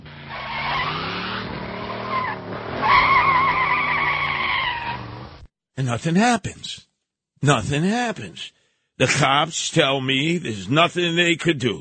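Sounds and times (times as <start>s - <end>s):
car tires squealing in a long skid: 0.0s - 5.3s
car engine revving: 0.0s - 5.5s
speech: 5.8s - 11.7s.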